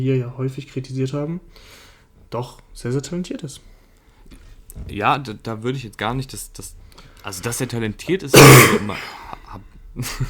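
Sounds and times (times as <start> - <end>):
speech: 0.0 - 3.7, 4.3 - 10.2
person coughing: 8.4 - 9.1
throat-clearing rasp: 8.4 - 9.1.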